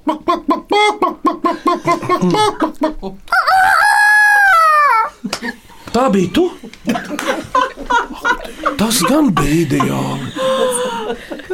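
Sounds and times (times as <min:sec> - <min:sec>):
laughter: 0:00.0 - 0:03.2, 0:04.9 - 0:11.5
speech: 0:02.2 - 0:03.3, 0:06.0 - 0:06.6, 0:08.8 - 0:10.4
person imitating a long rooster-style crow: 0:03.3 - 0:05.1.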